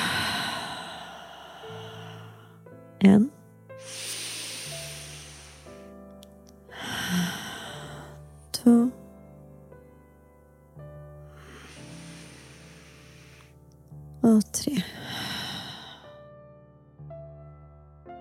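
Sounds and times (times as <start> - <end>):
slow deep breathing in through nose and out through mouth: 0.0 - 2.7, 3.7 - 6.0, 6.7 - 8.2, 11.3 - 13.6, 15.0 - 16.2
speech: 3.0 - 4.0.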